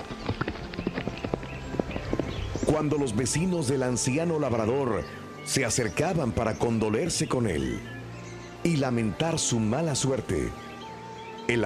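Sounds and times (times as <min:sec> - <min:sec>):
horse hooves galloping on hard ground: 0:00.0 - 0:04.6
speech: 0:02.7 - 0:08.0, 0:08.6 - 0:10.7, 0:11.5 - 0:11.6.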